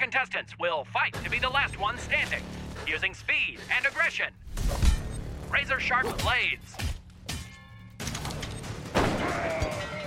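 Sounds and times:
dense noisy action backdrop: 0.0s - 10.0s
speech: 0.1s - 4.8s, 5.5s - 6.9s
video game gunfire from firearms: 8.8s - 10.0s.

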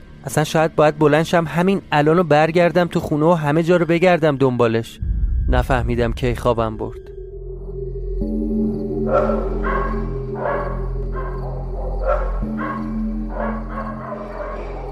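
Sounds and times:
speech: 0.2s - 7.1s, 9.1s - 9.8s
constant low droning hum: 5.0s - 13.3s
dogs barking before dawn: 9.0s - 14.9s.

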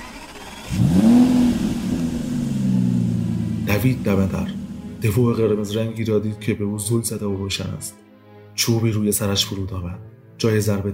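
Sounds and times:
car engine starting, revving and idling: 0.0s - 5.7s
speech: 3.7s - 8.0s, 8.6s - 10.9s.

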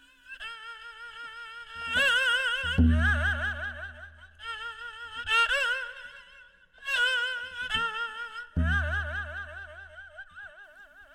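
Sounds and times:
haegeum Korean two-stringed bowed fiddle playing a melody: 1.8s - 6.2s, 6.8s - 10.1s.

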